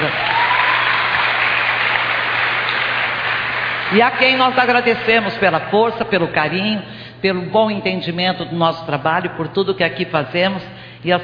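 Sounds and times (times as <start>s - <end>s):
sizable crowd applauding: 0.0s - 4.8s
speech: 3.9s - 11.2s.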